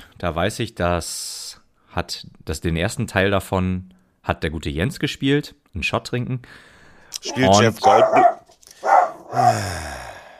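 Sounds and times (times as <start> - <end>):
speech: 0.2 - 1.4, 2.0 - 8.4, 9.3 - 9.9
dog barking: 7.5 - 9.6.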